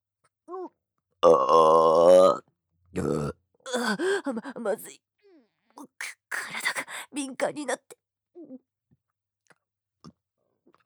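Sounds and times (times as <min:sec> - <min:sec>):
shorter belch: 0:01.2 - 0:03.4
loud drawn-out burp: 0:01.2 - 0:03.8.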